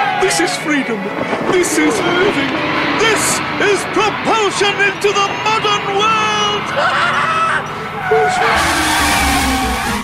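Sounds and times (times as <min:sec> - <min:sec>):
car skidding with squealing and scraping: 0:00.0 - 0:10.0
speech: 0:00.3 - 0:10.0.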